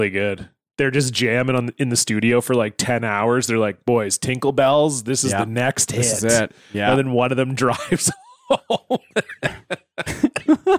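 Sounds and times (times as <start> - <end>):
speech: 0.0 - 10.7
laughter: 7.7 - 10.7
person recovering from COVID coughing: 9.2 - 10.7.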